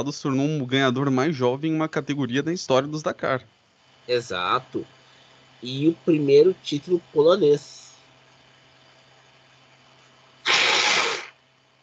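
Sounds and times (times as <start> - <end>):
speech: 0.0 - 5.0, 5.6 - 7.8
faint steady hum: 0.0 - 11.8
person sneezing: 10.4 - 11.4.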